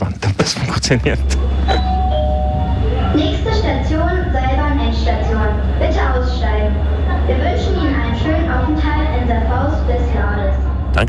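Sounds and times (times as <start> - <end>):
public address announcement at an underground train terminus: 0.0 - 11.0
speech: 0.5 - 1.9
heavy steady low rumble at an underground train terminus: 0.7 - 11.0
short tonal chime at an underground train terminus: 1.7 - 2.8.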